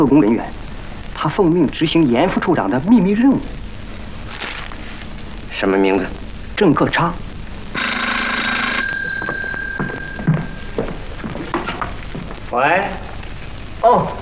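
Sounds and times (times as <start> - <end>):
speech: 0.0 - 0.6, 1.2 - 3.6, 5.6 - 7.2, 12.6 - 13.0
telephone bell ringing: 7.8 - 11.9.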